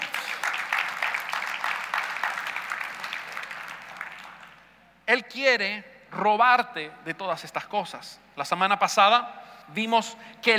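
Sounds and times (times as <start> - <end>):
audience applauding: 0.0 - 4.7
speech: 5.1 - 10.5.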